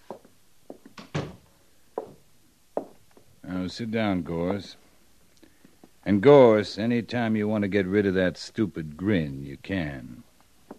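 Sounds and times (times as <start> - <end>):
door pushed shut: 1.0 - 1.4
speech: 3.6 - 4.8, 6.0 - 10.3.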